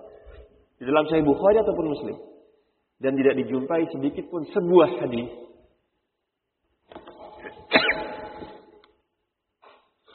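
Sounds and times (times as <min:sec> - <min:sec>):
speech: 0:00.8 - 0:02.3, 0:03.0 - 0:05.5
sneeze during an Islamic religious lecture: 0:07.4 - 0:08.7.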